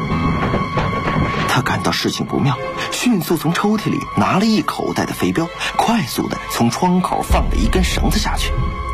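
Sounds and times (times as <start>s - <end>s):
urgent knocking on a door: 0.2s - 1.4s
speech: 1.6s - 8.8s.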